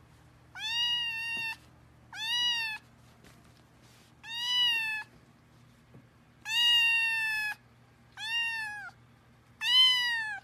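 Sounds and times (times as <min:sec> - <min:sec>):
cat meowing: 0:00.5 - 0:02.8, 0:04.2 - 0:05.1, 0:06.4 - 0:07.6, 0:08.2 - 0:09.0, 0:09.6 - 0:10.4.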